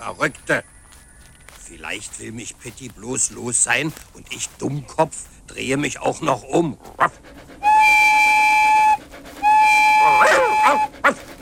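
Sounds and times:
speech: 0:00.0 - 0:00.7, 0:01.7 - 0:07.6
locomotive whistle blasts: 0:07.6 - 0:11.1.

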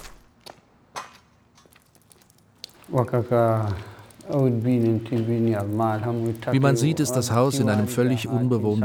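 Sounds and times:
footsteps crunching on a gritty floor in a ruined mud-brick house: 0:00.0 - 0:03.1
speech: 0:02.9 - 0:08.8.

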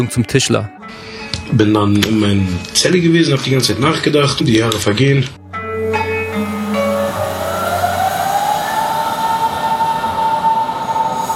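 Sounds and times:
speech: 0:00.0 - 0:05.4
S-Bahn commuter train electric motors whining pulling away from station: 0:05.8 - 0:11.3.

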